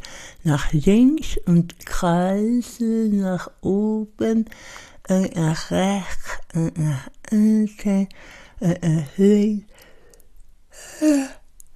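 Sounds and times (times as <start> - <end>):
speech: 0.4 - 9.7, 10.8 - 11.4
person yawning during vocal warm-up exercises: 10.7 - 11.4.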